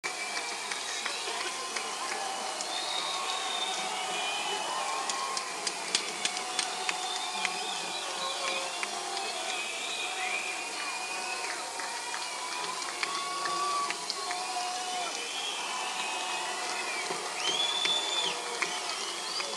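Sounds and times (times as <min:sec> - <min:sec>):
audience noise during an encore break: 0:00.0 - 0:19.5.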